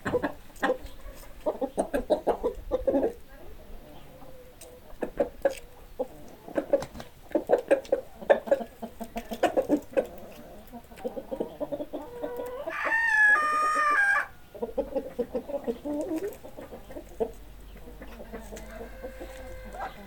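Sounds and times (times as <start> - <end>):
chicken clucking: 0.0 - 20.0
rooster crowing: 12.6 - 14.4, 18.6 - 20.0.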